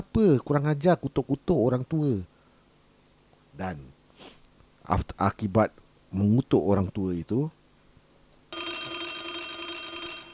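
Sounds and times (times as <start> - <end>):
speech: 0.0 - 2.3, 3.6 - 7.6
telephone with trilling electronic ring: 8.5 - 10.3.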